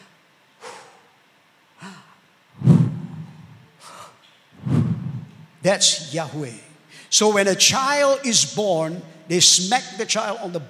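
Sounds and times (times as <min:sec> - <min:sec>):
person breathing in and out: 0:00.0 - 0:01.2, 0:01.8 - 0:05.3
speech: 0:05.6 - 0:10.6.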